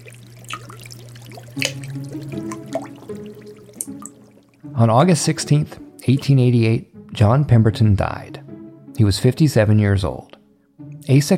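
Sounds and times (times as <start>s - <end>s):
scattered wet plops: 0.0s - 4.7s
sticky syrup trickling and dripping through floorboards: 0.0s - 4.8s
speech: 1.6s - 2.5s, 4.7s - 8.4s, 9.0s - 10.3s, 11.0s - 11.3s.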